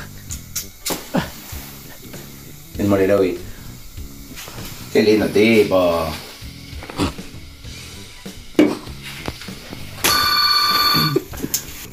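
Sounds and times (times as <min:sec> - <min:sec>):
speech: 0:02.8 - 0:03.5, 0:05.0 - 0:06.2
telephone ringing with a bright electronic burst: 0:10.0 - 0:11.3.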